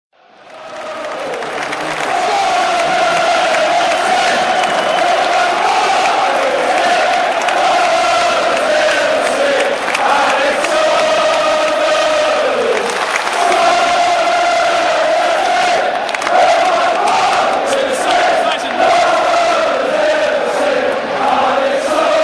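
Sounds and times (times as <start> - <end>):
football fans chanting: 0.4 - 22.2.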